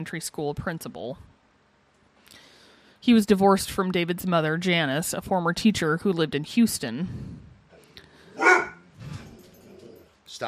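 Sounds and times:
speech: 0:00.0 - 0:01.3, 0:03.0 - 0:07.5
dog barking: 0:08.4 - 0:08.8.

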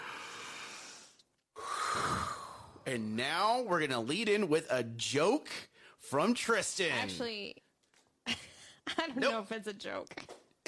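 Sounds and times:
deep breath: 0:00.0 - 0:02.8
speech: 0:02.9 - 0:07.6, 0:08.3 - 0:10.4.

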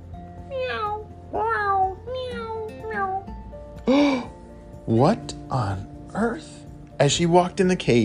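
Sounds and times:
low steady background: 0:00.0 - 0:08.0
house cat meowing inside a cave: 0:00.5 - 0:03.3
speech: 0:04.9 - 0:08.0.

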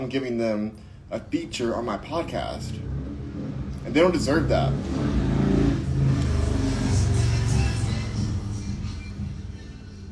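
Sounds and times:
speech: 0:00.0 - 0:03.0, 0:03.8 - 0:05.3
car speeding past on a street: 0:02.6 - 0:10.1.

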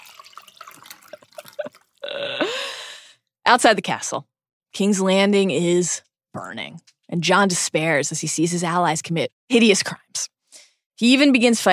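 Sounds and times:
wine glugging and splashing: 0:00.0 - 0:02.1
speech: 0:03.5 - 0:10.4, 0:11.0 - 0:11.7.

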